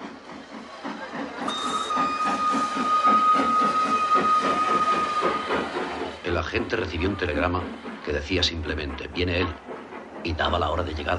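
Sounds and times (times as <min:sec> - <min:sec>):
train pulling in to a station and stopping: 0:00.0 - 0:11.1
sustained high whistle-like tone: 0:01.5 - 0:05.5
speech: 0:06.4 - 0:11.1.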